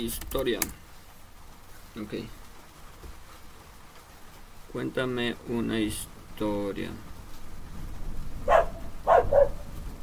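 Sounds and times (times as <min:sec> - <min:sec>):
speech: 0:00.0 - 0:00.8, 0:02.0 - 0:02.4, 0:04.7 - 0:07.1
dog barking: 0:08.4 - 0:09.7.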